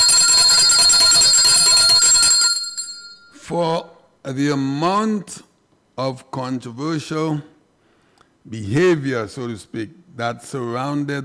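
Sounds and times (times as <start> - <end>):
bell ringing with a rapid clattering trill: 0.0 - 3.4
speech: 3.5 - 5.4, 6.0 - 7.5, 8.4 - 11.2.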